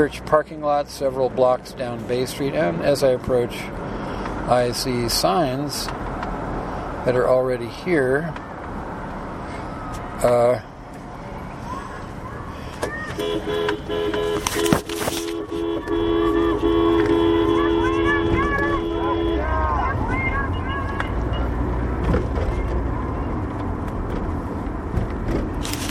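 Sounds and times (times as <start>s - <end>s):
speech: 0.0s - 6.1s, 7.0s - 8.5s, 10.2s - 10.7s
rumbling traffic: 0.0s - 25.8s
car horn honking from a sticker-covered car driving past: 13.1s - 21.5s
shouting voices at a student demonstration: 15.7s - 21.3s.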